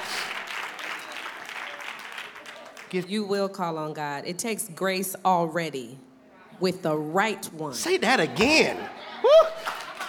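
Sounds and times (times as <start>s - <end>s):
light polite applause from a crowd: 0.0s - 3.1s, 9.2s - 10.0s
speech: 2.9s - 9.5s.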